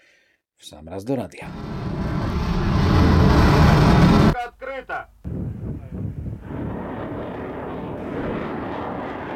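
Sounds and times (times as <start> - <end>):
speech: 0.6 - 2.0
hypersonic cruise missile engine roaring in flight: 1.5 - 4.4, 6.4 - 9.3.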